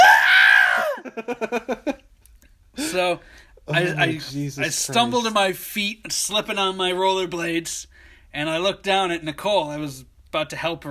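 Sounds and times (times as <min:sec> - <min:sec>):
human voice imitating a blood-curdling scream: 0:00.0 - 0:01.1
human voice breaking into short choppy laughing bursts: 0:00.7 - 0:02.0
speech: 0:01.2 - 0:01.9, 0:03.0 - 0:10.8.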